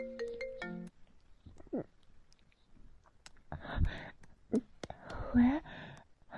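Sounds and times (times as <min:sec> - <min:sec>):
mobile phone ringtone for incoming call: 0:00.0 - 0:00.9
speech: 0:04.5 - 0:04.7, 0:05.3 - 0:05.7.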